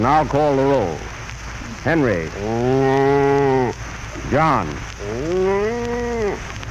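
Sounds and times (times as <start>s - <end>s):
speech: 0.0s - 1.1s, 1.8s - 5.6s
soft hiss of noise: 0.0s - 6.6s
cow mooing: 2.4s - 3.7s, 5.0s - 6.4s.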